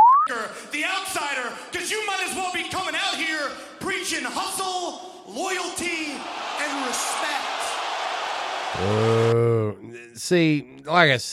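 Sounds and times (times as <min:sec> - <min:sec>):
speech: 0:00.3 - 0:07.6, 0:08.7 - 0:11.3
wrestling arena crowd roaring and cheering: 0:05.3 - 0:09.4
loud sustained shout-like tone: 0:06.2 - 0:09.4.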